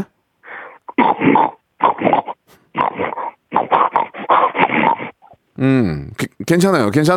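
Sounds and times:
woman imitating a hungry pig grunting and squealing: 0:00.9 - 0:05.4
speech: 0:05.6 - 0:07.1.

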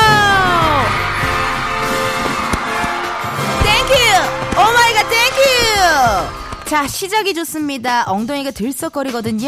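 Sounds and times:
crowd cheering and shouting as a dance party begins: 0:00.0 - 0:07.0
speech: 0:06.7 - 0:09.4.

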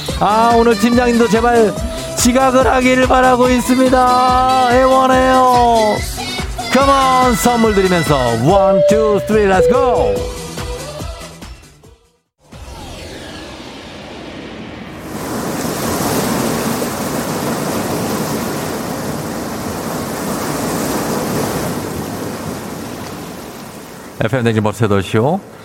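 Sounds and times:
speech: 0:00.2 - 0:06.1, 0:06.8 - 0:10.4, 0:24.2 - 0:25.6
ocean surf breaking on an empty beach at dawn at Seogwipo Jeju: 0:14.9 - 0:24.2.

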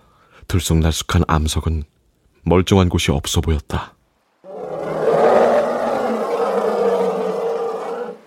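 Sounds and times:
speech: 0:00.5 - 0:04.0
elephant trumpeting cry: 0:04.5 - 0:08.2.

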